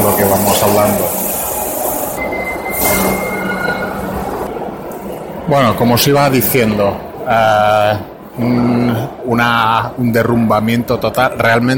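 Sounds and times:
sustained high metallic squeal from train wheels: 0.0 - 5.2
train rumbling past on rails: 0.0 - 8.4
speech: 0.2 - 1.2, 5.5 - 11.7.

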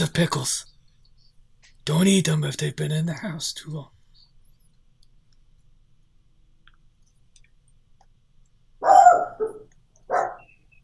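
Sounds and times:
speech: 0.0 - 0.7, 1.8 - 4.0
dogs barking: 8.8 - 10.5.

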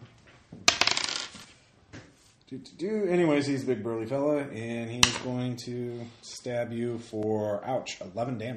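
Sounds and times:
hard plastic eight-sided die rolling on a table: 0.7 - 1.5
speech: 2.5 - 8.5.

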